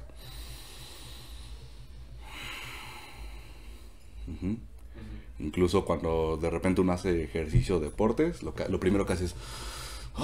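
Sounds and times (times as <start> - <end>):
person breathing in normally, filling the chest: 0.0 - 5.4, 9.4 - 10.2
speech: 4.3 - 4.7, 5.4 - 10.2.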